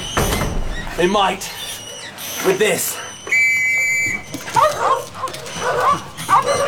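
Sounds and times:
terriers hunting rats barking and yipping: 0:00.0 - 0:06.6
speech: 0:01.0 - 0:01.6, 0:02.4 - 0:03.1
terrier whining: 0:01.4 - 0:06.6.

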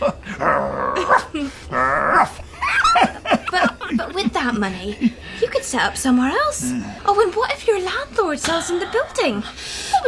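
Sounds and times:
dog barking and growling aggressively: 0:00.2 - 0:03.6
laughter: 0:02.4 - 0:05.5
speech: 0:04.6 - 0:05.1, 0:05.8 - 0:09.8.

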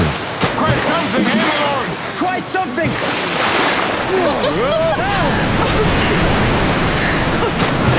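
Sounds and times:
river rapids rushing and roaring: 0:00.0 - 0:07.9
speech: 0:02.4 - 0:05.0
laughter: 0:04.0 - 0:07.9.

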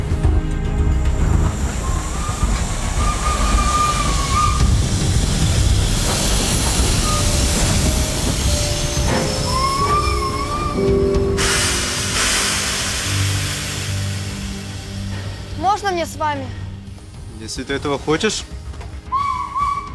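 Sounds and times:
troop train iron wheels rolling on rails: 0:00.2 - 0:19.9
steam-like hiss: 0:00.7 - 0:19.9
high metallic squeals from train wheels: 0:01.4 - 0:05.4, 0:06.0 - 0:12.1
speech: 0:17.5 - 0:18.7.

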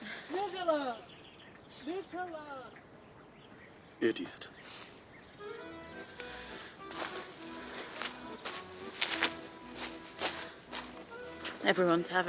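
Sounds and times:
speech: 0:00.5 - 0:01.1, 0:01.8 - 0:02.8, 0:04.0 - 0:04.8, 0:11.6 - 0:12.2
heavy footsteps stomping: 0:06.0 - 0:11.8.

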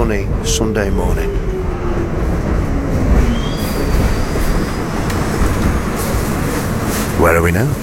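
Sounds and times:
subway train rumbling along the tracks: 0:00.0 - 0:07.8
speech: 0:00.1 - 0:01.4, 0:07.2 - 0:07.8
faint high squeals from subway train wheels: 0:00.4 - 0:07.2.

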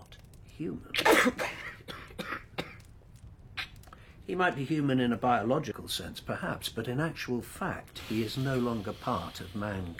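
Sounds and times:
speech: 0:00.6 - 0:01.7, 0:04.3 - 0:09.9
person stifling a cough after wine goes down the wrong way: 0:01.0 - 0:02.9.

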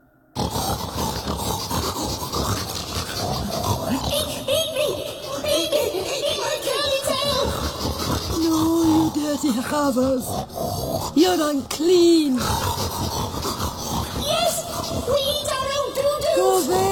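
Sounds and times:
crowd of pigs grunting and oinking: 0:00.4 - 0:16.9
speech: 0:09.3 - 0:13.5, 0:16.4 - 0:16.9.

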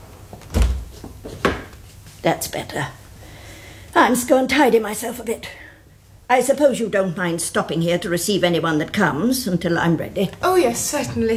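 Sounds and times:
door shutting with a low dull thud: 0:00.4 - 0:01.7
speech: 0:02.2 - 0:03.0, 0:04.0 - 0:05.6, 0:06.3 - 0:11.3.

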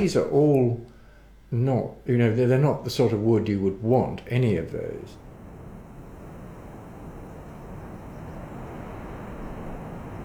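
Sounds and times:
speech: 0:00.0 - 0:00.9, 0:01.5 - 0:05.2
strong wind buffeting the microphone: 0:05.2 - 0:10.2.

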